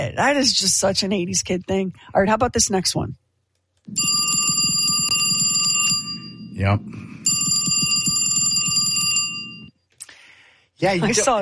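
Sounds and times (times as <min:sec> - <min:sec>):
speech: 0:00.0 - 0:03.2, 0:03.9 - 0:04.4, 0:06.6 - 0:07.1, 0:10.8 - 0:11.4
telephone bell ringing: 0:03.9 - 0:06.6, 0:07.2 - 0:09.8.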